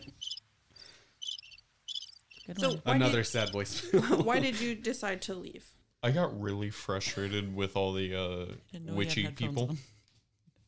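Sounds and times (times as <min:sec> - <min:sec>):
cricket chirping: 0:00.0 - 0:03.7
speech: 0:02.5 - 0:10.0
laughter: 0:02.6 - 0:04.8.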